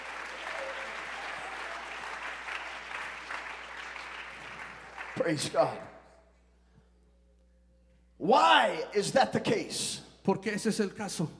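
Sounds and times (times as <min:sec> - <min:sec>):
audience at a church service applauding: 0:00.0 - 0:05.8
speech: 0:05.2 - 0:05.9, 0:08.2 - 0:11.3.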